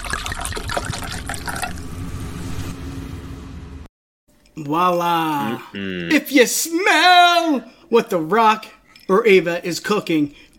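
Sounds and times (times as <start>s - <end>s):
cold drink fizzing as it is poured: 0.0s - 1.9s
speech: 0.8s - 1.0s, 4.6s - 10.5s.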